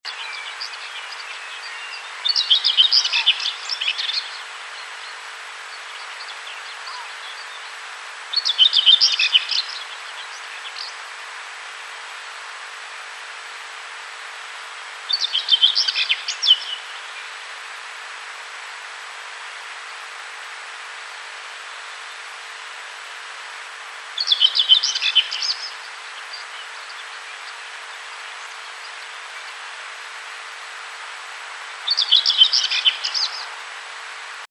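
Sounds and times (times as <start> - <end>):
Sylvia communis singing: 0.1 - 11.1, 15.1 - 17.4, 24.2 - 29.7, 31.9 - 33.5.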